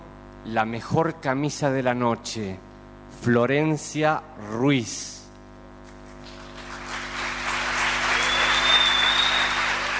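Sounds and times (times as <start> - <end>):
speech: 0.4 - 5.2
applause from a large audience in a hall: 6.2 - 9.9.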